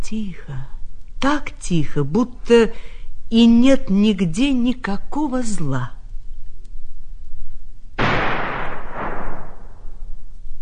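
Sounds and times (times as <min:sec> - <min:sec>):
speech: 0:00.1 - 0:06.0
gunshot echoing in a forest: 0:08.0 - 0:10.0.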